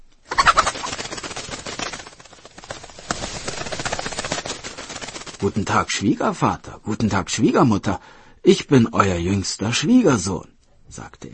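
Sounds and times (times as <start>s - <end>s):
scratching and rustling in a henhouse: 0.2s - 6.0s
rooster and hens clucking and squawking in a henhouse: 0.3s - 1.5s
speech: 5.4s - 11.3s.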